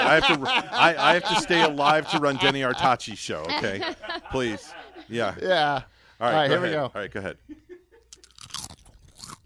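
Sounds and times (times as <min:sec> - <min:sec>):
laughter: 0:00.0 - 0:08.1
speech: 0:00.1 - 0:07.6
crunching on a hot pepper chip: 0:08.1 - 0:09.4.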